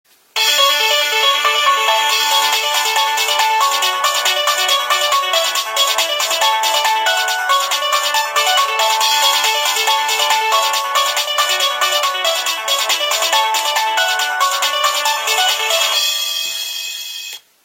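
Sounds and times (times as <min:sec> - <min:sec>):
polyphonic Nokia 1600 ringtones: 0:00.4 - 0:17.3.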